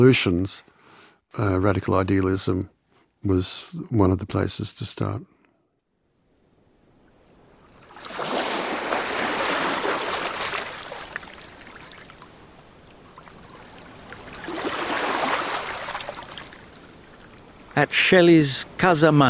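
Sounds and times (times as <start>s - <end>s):
speech: 0.0s - 0.7s, 1.3s - 5.4s, 17.8s - 19.2s
sea waves washing on the shore of a bay: 6.9s - 19.2s.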